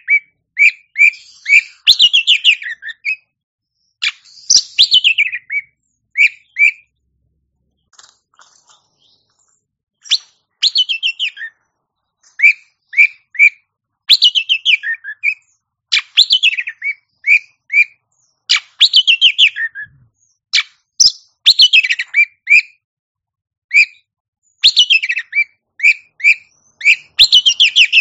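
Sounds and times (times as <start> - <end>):
Oriental magpie-robin song: 0.0 - 22.8, 23.7 - 28.0.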